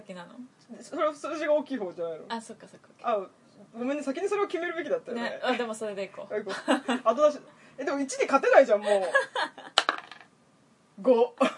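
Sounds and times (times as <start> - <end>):
speech: 0.1 - 9.8, 11.0 - 11.5
dice tumbling onto a hard surface: 9.8 - 10.3.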